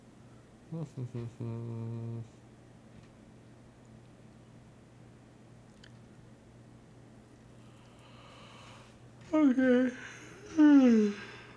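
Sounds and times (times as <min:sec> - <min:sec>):
speech: 0:00.7 - 0:02.4, 0:09.4 - 0:11.3
sleepy yawn: 0:08.3 - 0:11.5.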